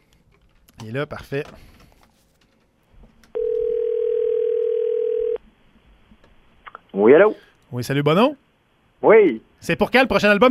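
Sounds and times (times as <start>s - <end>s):
speech: 0.8s - 1.8s, 7.0s - 8.4s, 9.0s - 10.5s
telephone dial tone while placing a call: 3.3s - 5.4s.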